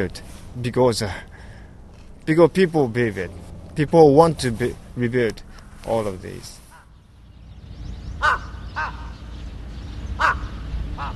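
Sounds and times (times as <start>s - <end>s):
speech: 0.0s - 1.3s, 2.3s - 6.6s
steady low rumble of outdoor noise: 0.0s - 11.1s
crows cawing overhead at a fishing port: 8.2s - 9.2s, 10.2s - 11.1s.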